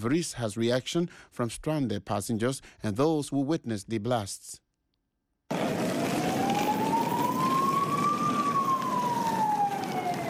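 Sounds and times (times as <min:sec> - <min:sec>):
speech: 0:00.0 - 0:04.6
emergency vehicle siren wailing on city streets: 0:05.5 - 0:10.2
rumble of street traffic: 0:05.5 - 0:10.2.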